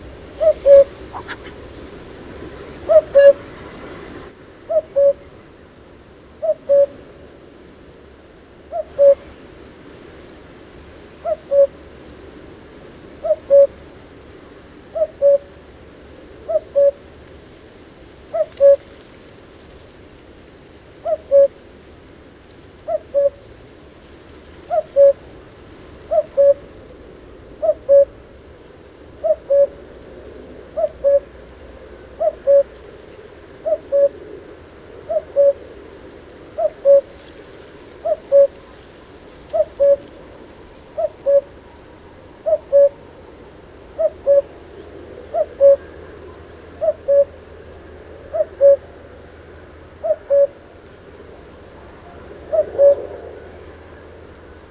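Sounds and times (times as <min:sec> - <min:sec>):
cuckoo calling: 0:00.0 - 0:01.9, 0:02.8 - 0:03.5, 0:04.7 - 0:05.4, 0:06.4 - 0:07.0, 0:08.7 - 0:09.2, 0:11.2 - 0:11.8, 0:13.2 - 0:13.8, 0:14.9 - 0:15.5, 0:16.5 - 0:17.0, 0:18.3 - 0:18.8, 0:21.0 - 0:21.6, 0:22.8 - 0:23.4, 0:24.7 - 0:25.2, 0:26.0 - 0:26.8, 0:27.6 - 0:28.2, 0:29.2 - 0:29.8, 0:30.7 - 0:31.4, 0:32.1 - 0:32.8, 0:33.6 - 0:34.4, 0:35.1 - 0:35.7, 0:36.6 - 0:37.2, 0:38.0 - 0:38.8, 0:39.5 - 0:40.2, 0:41.0 - 0:43.2, 0:44.0 - 0:47.4, 0:48.3 - 0:48.9, 0:50.0 - 0:50.6, 0:51.8 - 0:54.0.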